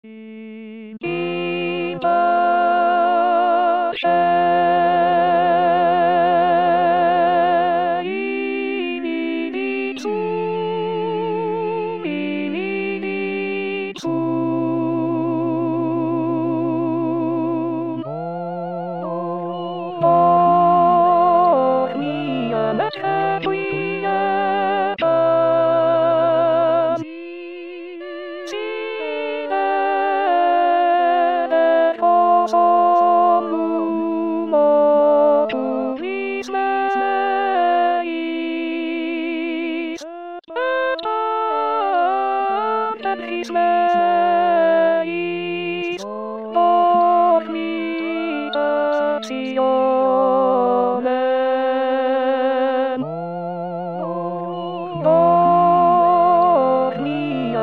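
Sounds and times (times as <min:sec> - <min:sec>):
alto voice: 0:00.0 - 0:57.6.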